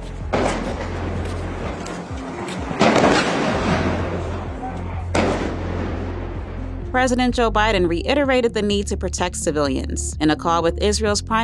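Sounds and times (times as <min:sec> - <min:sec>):
constant rumbling noisy background: 0:00.0 - 0:11.4
sharp booming blasts: 0:00.2 - 0:07.0
heavy gunfire at the Jabalia refugee camp in northern Gaza: 0:00.3 - 0:06.4
speech: 0:07.0 - 0:11.4.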